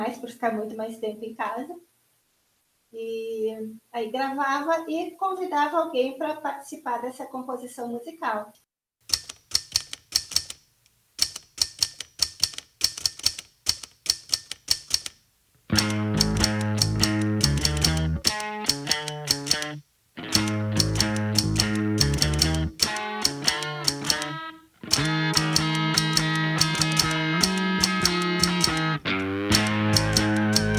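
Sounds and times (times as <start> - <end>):
speech: 0.1 - 1.9, 2.9 - 8.6
mechanical typewriter keys clacking: 9.0 - 10.6, 11.2 - 15.2, 15.8 - 30.7.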